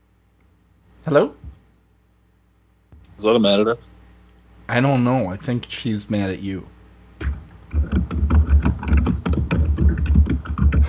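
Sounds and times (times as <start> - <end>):
speech: 1.0 - 1.5, 3.2 - 4.0, 4.7 - 7.3
rapid forceful typing on a computer keyboard: 7.7 - 10.8.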